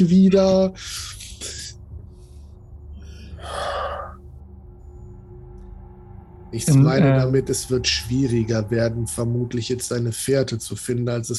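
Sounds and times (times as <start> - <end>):
speech: 0.0 - 1.6, 6.5 - 11.3
low steady hum: 0.0 - 11.3
deep breathing in and out: 0.8 - 4.3.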